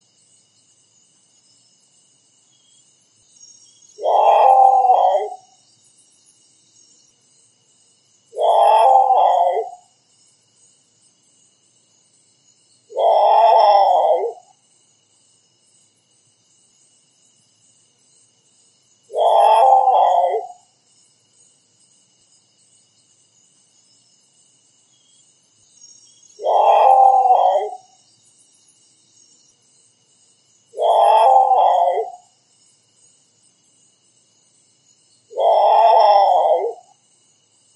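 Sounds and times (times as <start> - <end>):
great potoo calling: 4.0 - 5.5, 8.4 - 9.8, 12.9 - 14.4, 19.1 - 20.6, 26.4 - 27.9, 30.8 - 32.2, 35.3 - 36.9.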